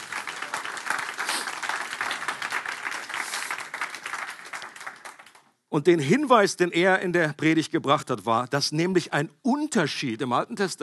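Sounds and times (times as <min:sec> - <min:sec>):
crowd applauding: 0:00.0 - 0:05.5
speech: 0:05.7 - 0:10.8.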